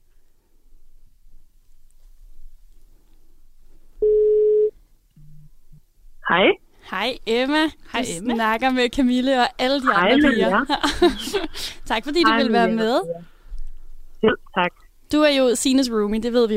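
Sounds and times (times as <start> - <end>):
telephone ringback tone: 4.0 - 4.7
speech: 6.4 - 13.3, 14.2 - 16.5
laughter: 9.9 - 12.7.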